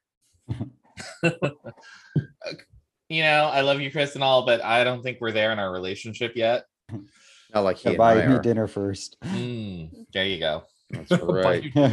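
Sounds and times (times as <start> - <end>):
laughter: 0.5 - 2.3, 11.0 - 11.9
speech: 0.5 - 11.9
person coughing and hacking: 1.0 - 1.9.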